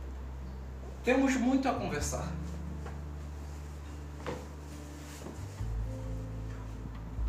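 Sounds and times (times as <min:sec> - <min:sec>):
low steady hum: 0:00.0 - 0:07.2
speech: 0:01.0 - 0:02.6
wooden chair creaking and knocking as someone sits: 0:03.8 - 0:05.8.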